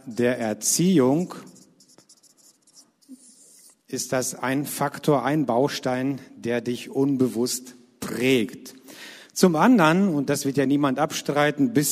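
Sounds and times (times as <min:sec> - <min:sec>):
speech: 0:00.1 - 0:01.6, 0:03.9 - 0:11.9
pen or marker scratching while writing by hand on a surface: 0:01.3 - 0:03.9.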